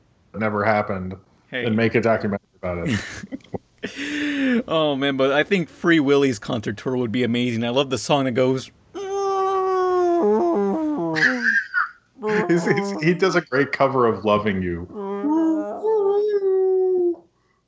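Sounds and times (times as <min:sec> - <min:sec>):
speech: 0:00.4 - 0:08.8, 0:12.5 - 0:15.0
laughter: 0:02.9 - 0:04.7, 0:11.2 - 0:13.4
person imitating whale song: 0:09.0 - 0:13.4, 0:14.9 - 0:17.2.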